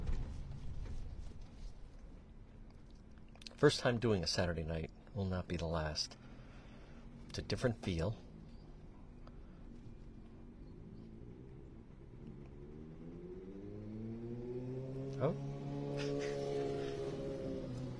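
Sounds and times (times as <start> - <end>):
steady low traffic rumble: 0.0 - 17.9
speech: 3.6 - 6.2, 7.3 - 8.2
motorcycle engine revving past: 10.6 - 17.9.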